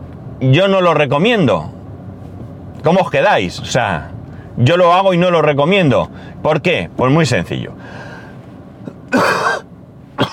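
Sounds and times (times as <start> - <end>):
speech: 0.4 - 1.8, 2.8 - 8.0, 9.1 - 9.6
throat-clearing: 9.1 - 9.6
harsh dry cough of a person recovering from a cough: 9.1 - 10.3.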